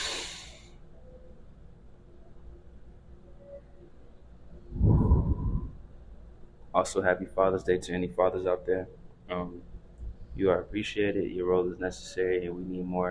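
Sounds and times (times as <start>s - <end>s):
deep breath: 0.0s - 0.7s, 4.7s - 5.9s
low steady hum: 0.0s - 13.0s
speech: 6.8s - 9.7s, 10.4s - 13.0s.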